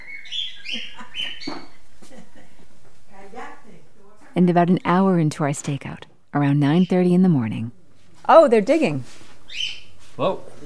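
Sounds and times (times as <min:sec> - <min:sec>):
pet bird chirping in a house: 0:00.0 - 0:01.8, 0:06.4 - 0:07.7, 0:09.5 - 0:10.0
speech: 0:04.4 - 0:10.6.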